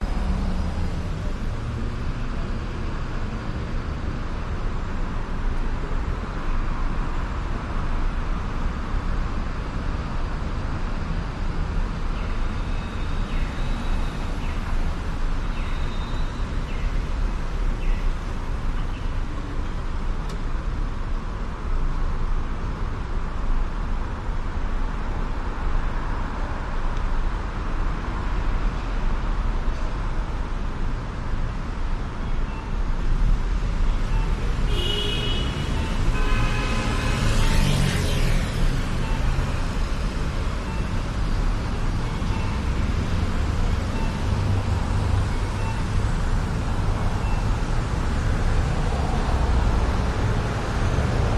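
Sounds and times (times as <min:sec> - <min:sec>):
car engines: 0:00.0 - 0:51.3
roaring night traffic in Vancouver: 0:00.0 - 0:51.3
car horns honking: 0:34.2 - 0:37.5.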